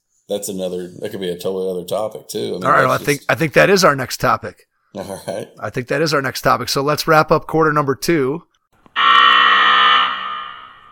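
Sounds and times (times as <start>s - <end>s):
speech: 0.3s - 9.2s
basketball halftime buzzer: 9.0s - 10.8s.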